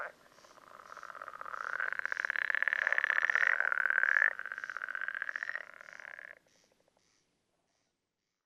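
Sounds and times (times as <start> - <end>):
pool frog Pelophylax lessonae rattling trill call: 0.0 - 6.4.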